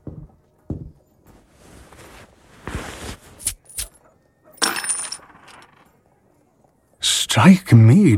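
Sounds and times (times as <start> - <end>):
gold coins dropped onto a counter at an inn: 3.4 - 5.9
speech: 7.4 - 8.1.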